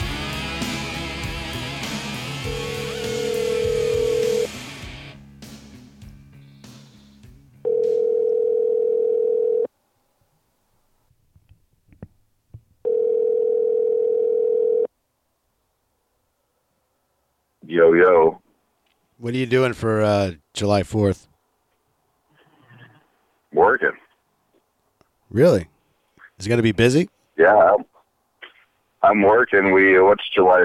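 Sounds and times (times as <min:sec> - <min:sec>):
music bed: 0:00.0 - 0:08.0
steady telephone tone: 0:02.5 - 0:04.5, 0:07.6 - 0:09.7, 0:12.8 - 0:14.9
speech: 0:17.9 - 0:18.4, 0:19.2 - 0:21.3, 0:23.5 - 0:24.0, 0:25.3 - 0:25.7, 0:26.4 - 0:27.9, 0:29.0 - 0:30.6.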